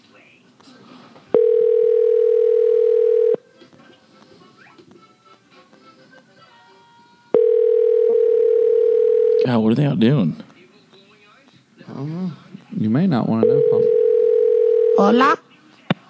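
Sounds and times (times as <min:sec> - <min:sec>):
faint noise through a phone line: 0:00.0 - 0:16.0
telephone ringback tone on an outgoing call: 0:01.4 - 0:03.4, 0:07.3 - 0:09.6, 0:13.4 - 0:15.4
speech: 0:09.7 - 0:10.5, 0:12.9 - 0:13.8, 0:15.0 - 0:15.4.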